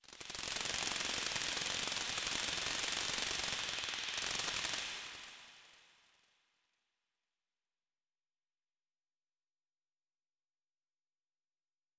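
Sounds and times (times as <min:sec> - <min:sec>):
forest cicadas chirping: 0:00.2 - 0:05.4.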